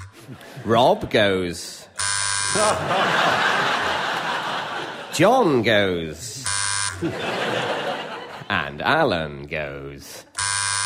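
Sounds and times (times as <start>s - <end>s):
crowd noise: 0.0s - 9.1s
audience laughter: 0.1s - 1.2s, 2.6s - 5.6s, 7.0s - 8.5s
speech: 0.3s - 1.9s, 2.5s - 4.0s, 5.2s - 6.3s, 7.0s - 7.7s, 8.5s - 10.3s
game show challenge buzzer: 2.0s - 2.9s, 6.4s - 7.1s, 10.3s - 10.8s.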